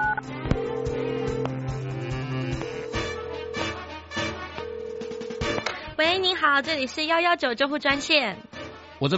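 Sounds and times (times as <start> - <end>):
phone keypad tones with clicks: 0.0 - 1.7, 2.6 - 3.9, 4.6 - 5.6
speech: 6.0 - 8.4, 9.0 - 9.1.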